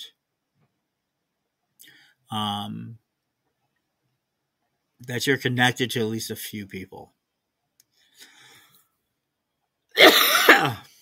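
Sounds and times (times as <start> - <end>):
speech: 2.3 - 3.0, 5.0 - 7.2, 10.6 - 10.9
harsh cough: 10.0 - 10.9.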